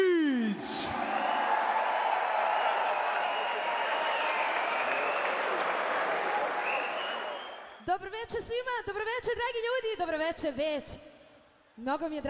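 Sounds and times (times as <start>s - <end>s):
audience applause greeting a performer at an evening music show: 0.9s - 7.8s
speech: 8.3s - 11.1s, 11.8s - 12.2s.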